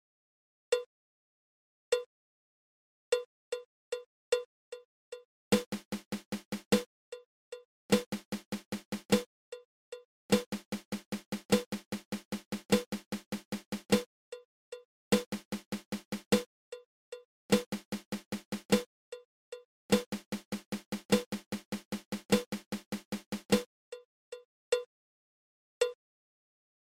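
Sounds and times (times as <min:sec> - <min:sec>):
flam paradiddle-diddle drum rudiment: 0:05.6 - 0:06.9, 0:07.9 - 0:09.3, 0:10.3 - 0:14.1, 0:15.1 - 0:16.5, 0:17.5 - 0:18.9, 0:19.9 - 0:23.7.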